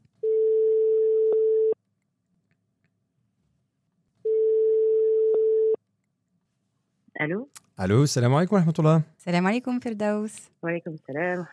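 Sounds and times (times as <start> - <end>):
telephone ringback tone of outgoing call: 0.2 - 1.8, 4.3 - 5.8
speech: 7.2 - 11.5.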